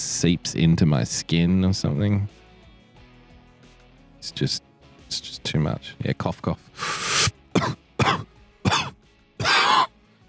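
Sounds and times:
speech: 0.2s - 2.4s, 4.2s - 6.9s, 7.6s - 7.8s
harsh coughing: 6.8s - 9.9s
throat clearing: 6.8s - 9.9s.

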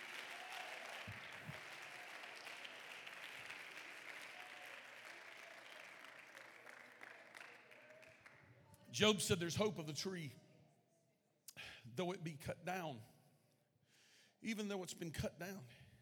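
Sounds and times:
crowd applause filling the room: 0.0s - 8.8s
speech: 9.0s - 10.4s, 12.0s - 13.2s, 14.4s - 15.8s.

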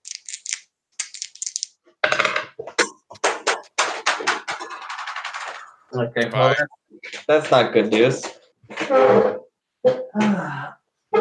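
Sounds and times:
dice rattling in a hand: 0.0s - 1.8s, 4.5s - 5.7s
dice tumbling and clattering across a hard surface: 0.0s - 5.7s
speech: 6.0s - 10.8s.

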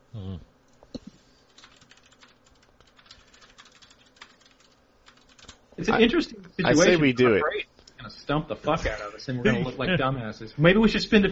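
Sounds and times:
computer keyboard typing: 1.5s - 5.6s
speech: 5.8s - 7.7s, 8.3s - 11.3s.

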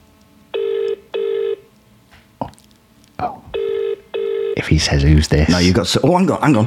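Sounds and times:
WhatsApp call ringback tone over a phone speakerphone: 0.6s - 1.6s, 3.6s - 4.6s
speech: 4.7s - 6.6s.

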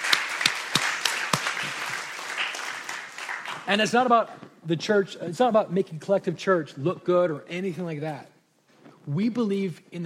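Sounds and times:
church audience applauding: 0.0s - 3.8s
speech: 3.7s - 8.3s, 9.0s - 10.0s.

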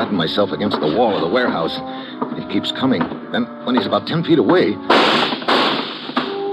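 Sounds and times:
speech: 0.1s - 5.4s
sharp gunshots with brief echo: 4.9s - 6.4s.

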